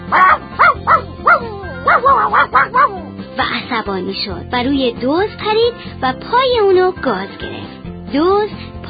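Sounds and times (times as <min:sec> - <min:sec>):
dog yelping in pain: 0:00.1 - 0:03.2
speech: 0:03.8 - 0:08.8.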